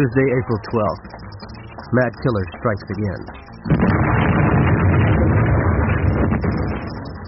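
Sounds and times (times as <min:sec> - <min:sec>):
speech: 0:00.0 - 0:04.0
car bomb explosion: 0:03.6 - 0:07.2.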